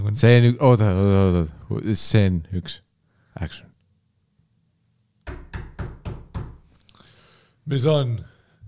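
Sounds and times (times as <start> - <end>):
speech: 0.1 - 2.8, 3.4 - 3.7, 7.7 - 8.3
firm knocks on a door or wooden surface: 5.3 - 6.7.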